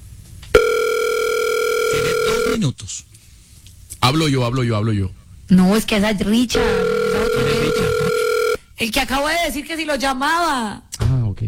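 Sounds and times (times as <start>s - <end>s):
telephone dial tone while placing a call: 0.6s - 2.6s, 6.6s - 8.6s
speech: 2.3s - 3.2s, 4.0s - 6.8s, 8.8s - 11.4s.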